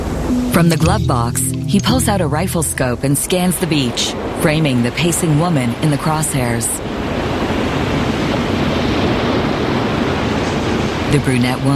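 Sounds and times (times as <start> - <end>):
speech: 0.3 - 6.9, 11.1 - 11.7
surf washing onto a sunny beach: 3.2 - 11.7.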